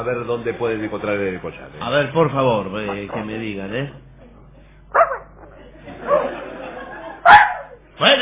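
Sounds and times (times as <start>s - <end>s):
speech: 0.0s - 4.1s
soft murmur of voices: 0.0s - 8.0s
dog barking and whimpering during a boat search: 4.9s - 5.5s, 7.2s - 7.8s
laughter: 5.4s - 7.8s.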